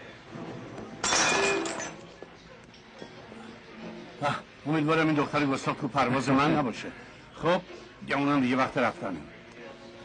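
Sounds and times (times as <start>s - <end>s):
drinking glasses being smashed: 1.0s - 2.1s
speech: 4.2s - 9.4s.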